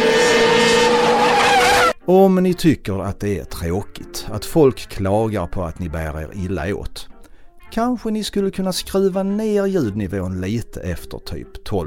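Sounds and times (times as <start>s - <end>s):
car engine revving hard: 0.0s - 2.0s
tires squealing from skidding: 0.0s - 2.0s
speech: 2.1s - 7.1s, 7.7s - 11.8s.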